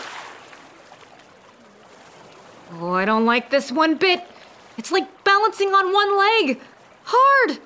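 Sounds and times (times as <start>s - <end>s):
steady rushing river water: 0.0s - 7.6s
speech: 2.7s - 7.6s.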